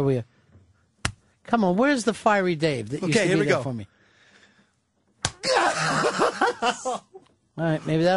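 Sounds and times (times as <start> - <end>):
speech: 0.0 - 0.3, 1.5 - 4.0, 5.8 - 8.1
man's hand slapping his own bare chest: 1.0 - 1.2, 5.2 - 5.4
loud strained vocal outburst: 5.3 - 6.3
laughter: 5.4 - 7.2.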